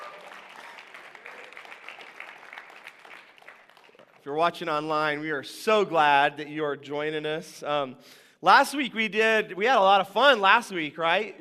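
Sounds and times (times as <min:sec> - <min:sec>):
audience applauding with hand claps: 0:00.0 - 0:04.3
speech: 0:04.2 - 0:11.3.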